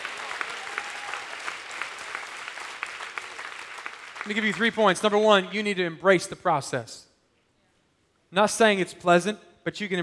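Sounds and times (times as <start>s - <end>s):
roomful of people applauding: 0.0s - 5.7s
speech: 4.2s - 7.1s, 8.3s - 10.0s.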